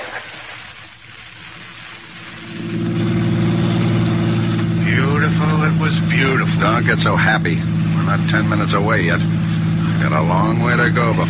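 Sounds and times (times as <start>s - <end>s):
car engine droning while driving and revving: 2.3s - 11.2s
speech: 6.9s - 11.2s.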